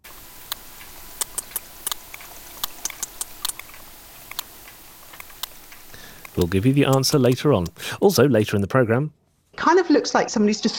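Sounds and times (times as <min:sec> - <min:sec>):
faint steady underwater hiss: 0:00.0 - 0:08.2
sperm whale clicks: 0:00.1 - 0:08.0
speech: 0:06.4 - 0:10.7.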